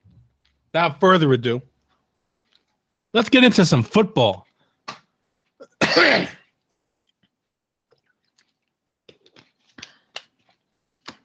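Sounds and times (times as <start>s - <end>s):
speech: 0.7s - 1.7s, 3.1s - 4.4s, 6.0s - 6.4s
person clearing throat: 5.6s - 6.5s.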